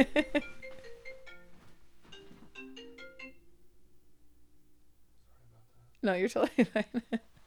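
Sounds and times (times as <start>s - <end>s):
speech: 0.0s - 0.5s, 6.0s - 7.4s
phone ringtone with bright melodic tune of stepped electronic notes: 0.0s - 3.6s.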